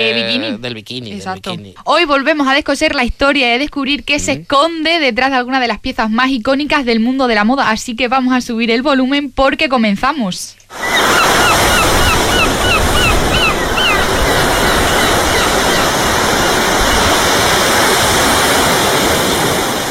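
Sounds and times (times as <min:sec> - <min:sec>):
speech: 0:00.0 - 0:11.6
seagull calls: 0:10.7 - 0:17.7
loud crashing surf: 0:10.7 - 0:19.8.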